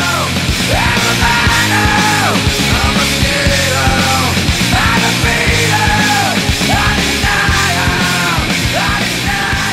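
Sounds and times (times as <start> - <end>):
heavy distorted guitars: 0.0 - 9.7
loud distorted grunge rock song: 0.0 - 9.7
singer screaming: 0.0 - 9.7
pounding drums: 0.1 - 9.7.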